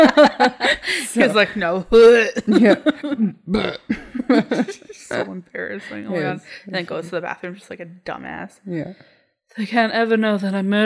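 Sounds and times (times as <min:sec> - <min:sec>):
laughter: 0:00.0 - 0:06.2
speech: 0:00.0 - 0:10.8
person imitating croaky burps: 0:03.1 - 0:04.2.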